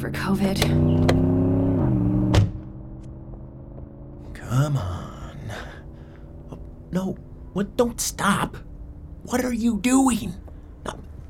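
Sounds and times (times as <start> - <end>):
speech: 0.0 - 1.3, 4.6 - 5.0, 7.0 - 11.2
car engine droning as the car drives away: 0.1 - 7.9
brief thump: 2.3 - 2.7.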